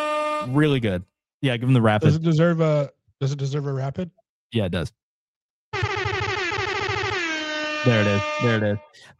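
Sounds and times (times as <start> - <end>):
air horn sound effect blaring in rapid pulses: 0.0 - 0.7, 5.8 - 9.0
speech: 0.4 - 5.0, 7.8 - 9.1.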